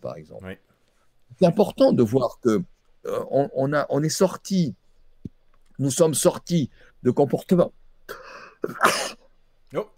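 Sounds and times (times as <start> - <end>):
speech: 0.0 - 0.7, 1.3 - 4.8, 5.8 - 9.9
sneeze: 8.6 - 9.2.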